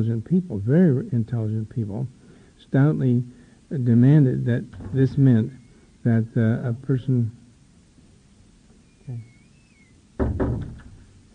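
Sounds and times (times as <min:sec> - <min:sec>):
speech: 0:00.0 - 0:07.4, 0:09.1 - 0:09.3, 0:10.2 - 0:10.8
faint high whine: 0:00.0 - 0:10.3
door banging shut: 0:04.7 - 0:05.6, 0:10.2 - 0:11.2.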